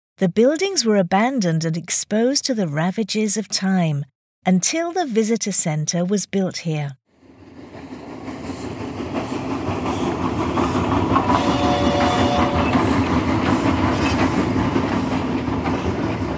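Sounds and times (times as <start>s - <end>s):
speech: 0.2s - 7.0s
train clattering along rails: 7.2s - 16.3s.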